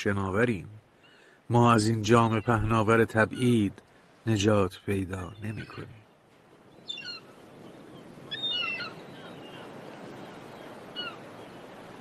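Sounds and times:
speech: 0.0s - 0.8s, 1.5s - 6.0s
steady wash of surf-like noise: 0.0s - 11.9s
seagulls crying: 1.0s - 3.6s, 6.8s - 11.8s.

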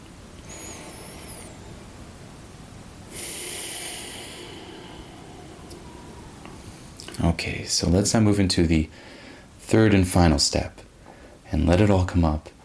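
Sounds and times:
deep breath during a guided relaxation exercise: 0.4s - 7.2s, 8.9s - 9.6s, 11.0s - 11.4s
speech: 7.2s - 10.8s, 11.5s - 12.6s.

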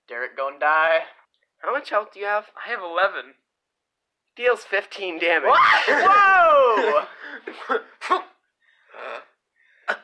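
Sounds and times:
speech: 0.2s - 3.4s, 4.4s - 8.3s
person acting out a wet sputtering coughing fit: 7.4s - 8.4s.

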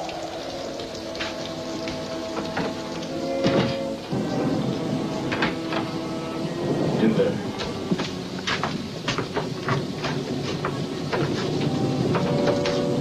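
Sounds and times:
steady rain pattering in a dense wash: 0.0s - 12.9s
thunder cracks and rumbling swells: 0.0s - 12.9s.

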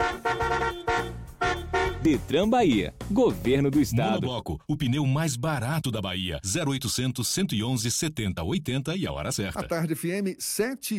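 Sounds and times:
car horn honking: 0.0s - 2.3s
speech: 2.0s - 10.9s.

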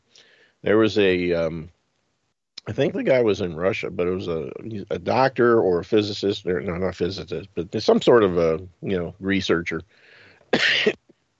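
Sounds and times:
speech: 0.6s - 1.8s, 2.6s - 11.0s
person coughing: 10.5s - 11.0s.

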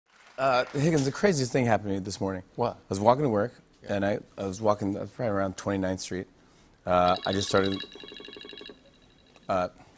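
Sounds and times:
speech: 0.4s - 8.4s, 9.5s - 9.8s
red telephone ringing with a warbling trill: 7.1s - 9.5s.

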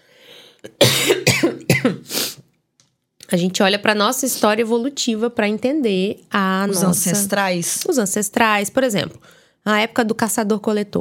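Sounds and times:
faint breath: 0.0s - 0.6s, 9.2s - 9.6s
harsh throaty coughs after eating popcorn: 0.7s - 2.1s
speech: 3.3s - 10.9s.

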